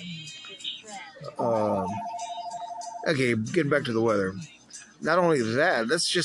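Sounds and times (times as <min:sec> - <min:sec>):
speech: 0:01.3 - 0:02.2, 0:03.0 - 0:06.2
house phone ringing with an electronic tone: 0:01.8 - 0:03.2.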